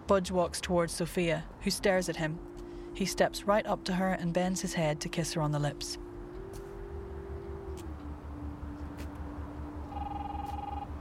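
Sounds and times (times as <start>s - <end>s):
low rumbling background: 0.0s - 10.0s
speech: 0.1s - 6.0s
telephone ringing with electronic tone: 9.9s - 10.9s.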